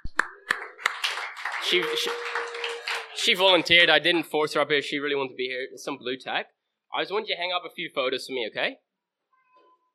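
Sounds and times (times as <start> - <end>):
audience applause: 0.2 - 3.9
crowd chatter: 1.0 - 3.4
speech: 1.7 - 2.4, 3.2 - 8.9.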